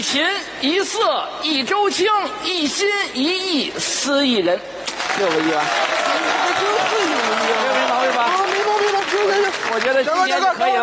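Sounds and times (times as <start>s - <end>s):
speech: 0.0s - 7.3s, 9.2s - 10.8s
crowd applauding: 4.9s - 10.8s.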